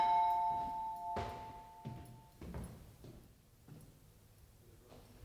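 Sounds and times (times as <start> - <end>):
electronic doorbell ringing at apartment door: 0.0 - 2.0.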